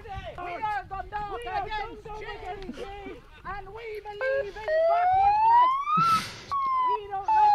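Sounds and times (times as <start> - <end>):
loud siren rising in pitch and wailing: 4.2 - 7.5.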